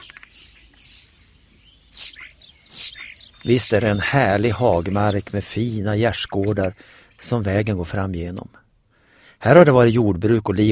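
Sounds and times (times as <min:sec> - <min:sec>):
common starling singing and mimicking other birds: 0:00.0 - 0:08.2
speech: 0:03.4 - 0:08.6, 0:09.4 - 0:10.7.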